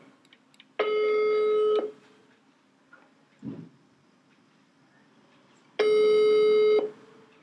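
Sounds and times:
telephone ringback beeps while placing a call: 0.8 - 1.9, 5.8 - 7.0
faint noise: 1.9 - 7.4.

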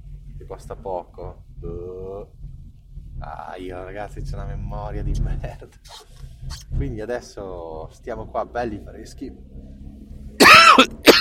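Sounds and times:
speech: 0.5 - 2.4, 3.2 - 9.7, 10.4 - 11.1
short rough voiced cough: 10.4 - 11.1.

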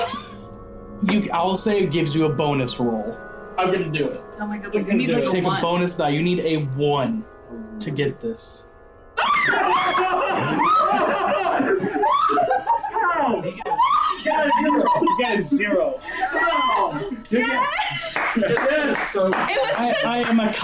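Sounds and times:
several people shrieking and yelling excitedly: 0.0 - 0.5, 9.2 - 20.6
speech: 1.0 - 8.7, 9.5 - 12.5, 14.2 - 20.6
people laughing: 9.2 - 20.6.

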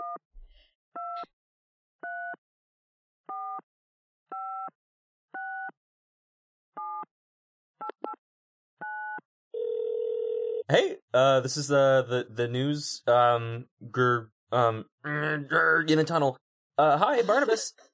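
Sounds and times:
continuous telephone tone: 8.8 - 10.7
speech: 10.7 - 17.9.

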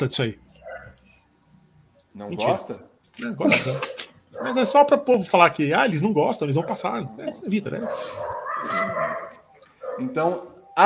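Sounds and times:
speech: 0.0 - 0.4, 2.2 - 9.2, 10.0 - 10.8
dog barking and yipping: 0.6 - 1.0, 4.3 - 5.0, 6.4 - 10.5.

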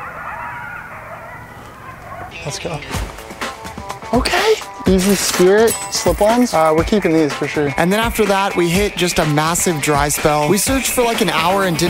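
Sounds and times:
chorus of coyotes yipping: 0.0 - 4.8
speech: 2.3 - 3.2, 4.1 - 11.8.

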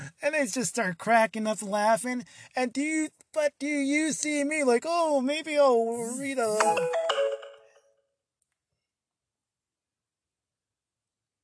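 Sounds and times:
speech: 0.3 - 7.0
phone notification chime: 6.5 - 7.8.

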